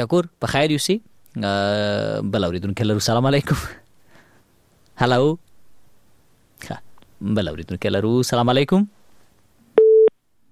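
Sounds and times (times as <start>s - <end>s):
speech: 0.0s - 3.8s, 5.0s - 5.4s, 6.6s - 9.0s
telephone busy tone after a caller's line is cut: 9.8s - 10.1s.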